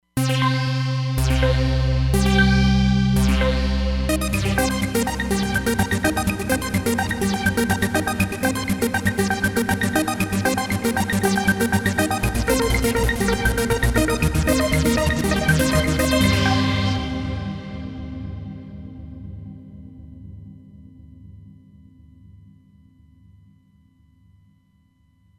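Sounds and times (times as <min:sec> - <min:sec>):
synthesizer riff: 0:00.2 - 0:18.3.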